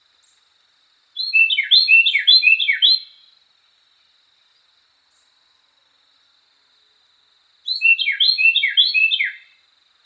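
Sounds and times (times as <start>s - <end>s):
Carolina wren singing rolling phrases of down-slurred whistles: 1.2s - 3.3s, 7.6s - 9.6s.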